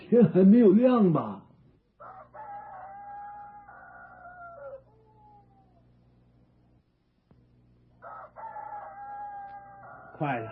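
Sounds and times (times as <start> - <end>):
speech: 0.1 - 1.4, 10.2 - 10.5
rooster crowing before dawn: 2.0 - 5.9, 8.0 - 10.5
low hum: 4.3 - 8.1.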